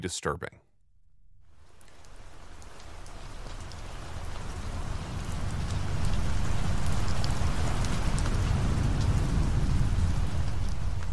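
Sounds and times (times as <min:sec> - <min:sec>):
speech: 0:00.0 - 0:00.6
steady heavy rain from a major storm front: 0:01.5 - 0:11.1
low rumble of distant thunder: 0:02.4 - 0:11.1.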